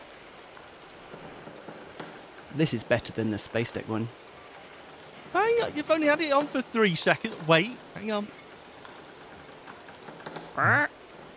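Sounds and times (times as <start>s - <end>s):
pirate ship creaking: 0.8s - 3.5s, 4.1s - 11.3s
speech: 2.6s - 4.2s, 5.4s - 8.4s, 10.6s - 10.9s
parrot squawking: 10.6s - 10.9s.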